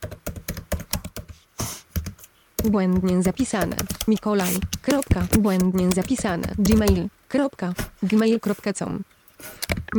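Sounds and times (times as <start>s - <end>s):
typing an email address on a computer keyboard: 0.0s - 7.0s
speech: 2.6s - 9.9s.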